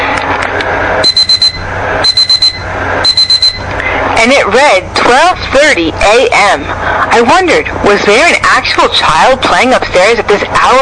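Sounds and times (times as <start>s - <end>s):
soft steady hum: 0.0s - 10.8s
alarm clock beeping shrill electronic tones: 1.0s - 3.7s
speech: 4.5s - 10.8s.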